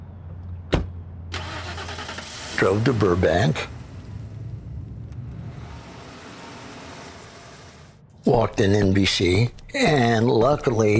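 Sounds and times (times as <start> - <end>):
car engine starting: 1.3 - 8.1
speech: 2.6 - 3.8, 8.3 - 10.9.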